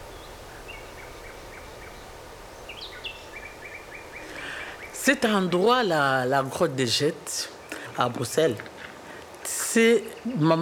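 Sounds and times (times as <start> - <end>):
birds chirping at the Jette grotto in Brussels, Belgium: 0.0 - 10.6
steady outdoor hiss at the Jette grotto in Brussels, Belgium: 0.0 - 10.6
speech: 5.0 - 8.7, 9.8 - 10.6.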